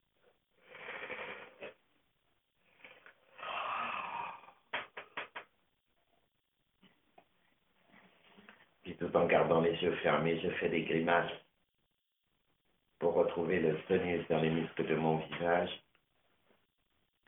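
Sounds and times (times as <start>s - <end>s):
deep breathing: 2.6s - 4.7s
speech: 9.0s - 11.4s, 13.4s - 15.8s.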